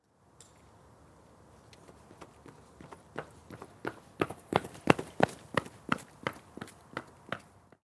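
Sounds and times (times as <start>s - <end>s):
running footsteps: 1.8s - 7.6s.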